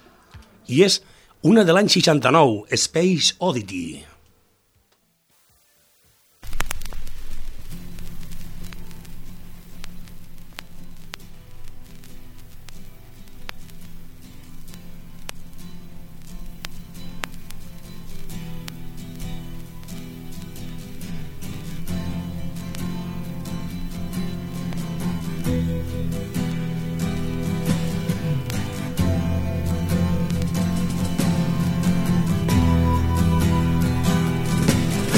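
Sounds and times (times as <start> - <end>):
song played from a vinyl record: 0.0 - 35.1
speech: 0.7 - 4.1
vinyl record surface clicks and crackles: 4.2 - 35.1.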